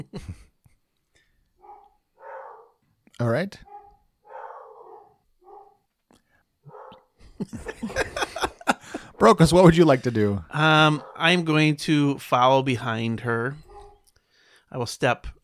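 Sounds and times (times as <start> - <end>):
speech: 0.0 - 0.4, 3.2 - 3.7, 7.4 - 8.2, 9.2 - 13.6, 14.7 - 15.4
single loud sharp dog bark: 1.6 - 2.8, 3.6 - 5.8, 6.6 - 7.1, 11.0 - 11.3, 13.6 - 14.1
laughter: 7.2 - 10.4.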